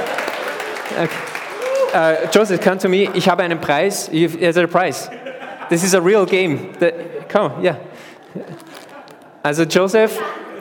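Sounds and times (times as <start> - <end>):
small group applauding: 0.0 - 3.2
speech: 1.0 - 8.7, 9.4 - 10.4
laughter: 4.9 - 10.5.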